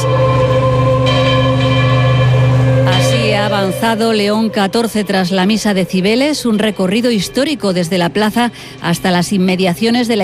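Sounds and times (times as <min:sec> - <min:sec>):
church bells pealing during a religious celebration: 0:00.0 - 0:07.5
speech: 0:03.5 - 0:10.2.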